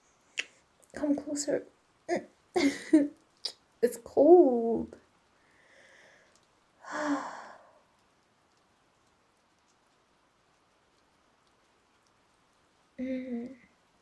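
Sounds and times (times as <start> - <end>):
soft steady rain pattering: 0.2 - 13.9
speech: 1.0 - 3.2, 3.8 - 5.0, 6.9 - 7.4, 13.0 - 13.6
breathy sigh: 5.6 - 7.8.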